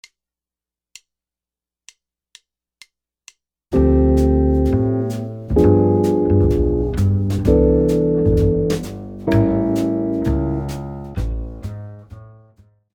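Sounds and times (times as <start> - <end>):
jazz guitar comping: 3.7 - 12.4.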